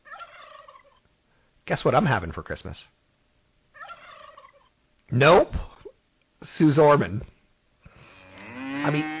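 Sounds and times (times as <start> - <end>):
speech: 1.7 - 3.0, 5.1 - 5.7, 6.4 - 7.4, 8.8 - 9.1
cow mooing with a long low bellow: 8.2 - 9.1.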